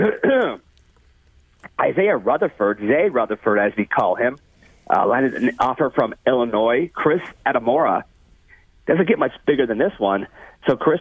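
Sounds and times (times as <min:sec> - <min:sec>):
loud throat clearing: 0:00.0 - 0:00.6
speech: 0:01.8 - 0:08.1, 0:08.8 - 0:11.0.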